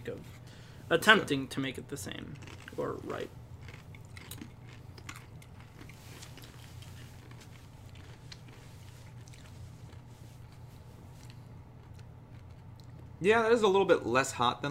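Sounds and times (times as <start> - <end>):
speech: 0.9 - 3.4, 13.2 - 14.7
biting and crunching a chip: 2.2 - 10.1.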